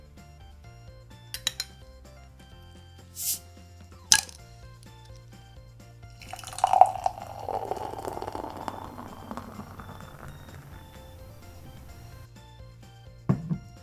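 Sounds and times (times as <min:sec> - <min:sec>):
short hiss: 0:03.2 - 0:03.4
sharp clack: 0:04.1 - 0:04.4
light glass clinks: 0:06.2 - 0:12.1
beer pouring into a glass: 0:06.2 - 0:12.3.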